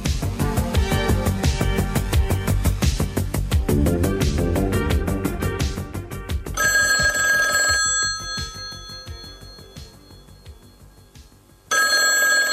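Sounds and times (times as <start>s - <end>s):
dense musical passage: 0.0s - 6.6s
telephone bell ringing in long shrill bursts: 6.6s - 12.5s.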